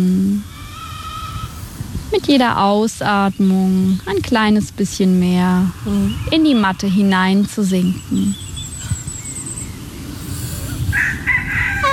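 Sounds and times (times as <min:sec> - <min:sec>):
steady low rumble of noise: 0:00.0 - 0:11.9
speech: 0:02.2 - 0:08.4
rooster crowing outdoors among chickens: 0:10.9 - 0:11.9.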